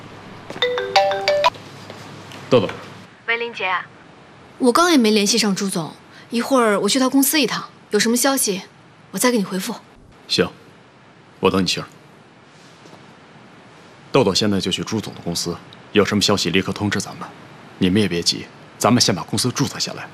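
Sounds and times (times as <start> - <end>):
mobile phone ringtone for incoming call: 0.6 - 1.6
people talking: 2.5 - 3.9, 4.6 - 10.6, 14.2 - 20.1.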